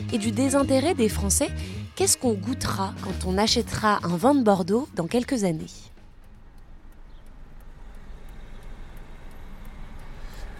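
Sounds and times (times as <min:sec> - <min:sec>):
car interior road and engine drone while driving: 0:00.0 - 0:10.5
speech: 0:00.1 - 0:05.9
faint high ticking in a car interior: 0:05.8 - 0:10.5.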